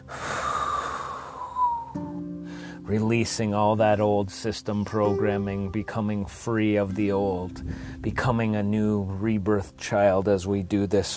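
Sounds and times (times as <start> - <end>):
long breathy exhale through the mouth during a guided meditation: 0.0 - 2.8, 7.6 - 8.0
speech: 2.9 - 11.1
quiet sustained tone: 4.7 - 7.7.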